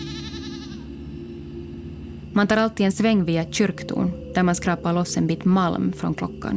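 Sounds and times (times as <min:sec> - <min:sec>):
goat bleating: 0:00.0 - 0:00.9
steady low droning rumble: 0:00.5 - 0:06.5
speech: 0:02.3 - 0:06.5.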